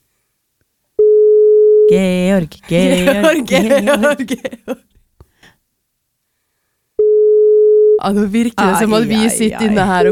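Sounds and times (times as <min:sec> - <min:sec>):
steady single-pitched telephone busy tone: 0:01.0 - 0:01.9, 0:07.0 - 0:08.0
speech: 0:01.9 - 0:05.0, 0:08.0 - 0:10.1
laughter: 0:02.9 - 0:04.9.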